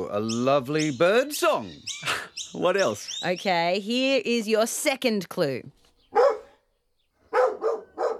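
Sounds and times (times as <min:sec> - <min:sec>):
speech: 0:00.1 - 0:05.8
dogs barking: 0:06.1 - 0:06.6, 0:07.2 - 0:08.1.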